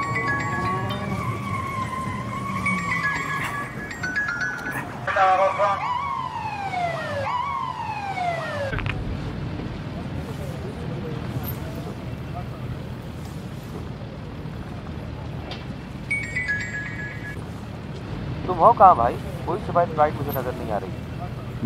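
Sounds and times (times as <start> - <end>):
police siren of a passing convoy of government ministers: 0.0 - 8.9
steady roar of traffic: 0.0 - 21.6
speech: 18.6 - 21.6.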